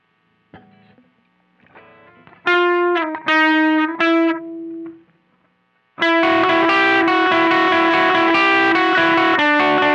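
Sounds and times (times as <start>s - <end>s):
slow riff: 1.7s - 5.1s, 6.0s - 9.9s.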